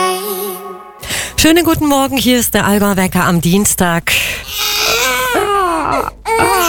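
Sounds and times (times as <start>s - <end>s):
speech: 1.4s - 4.7s
baby crying: 4.5s - 6.6s.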